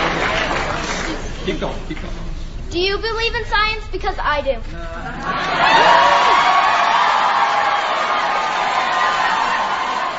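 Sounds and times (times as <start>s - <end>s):
large audience applause: 0.0s - 1.6s, 5.4s - 10.1s
speech: 1.5s - 5.9s
large audience cheering and whooping: 5.2s - 10.1s.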